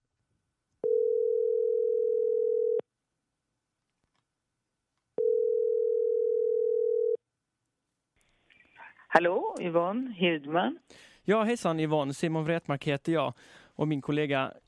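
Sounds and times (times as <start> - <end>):
telephone ringback tone while a call connects: 0.8 - 2.8, 5.2 - 7.2
speech: 9.2 - 14.6.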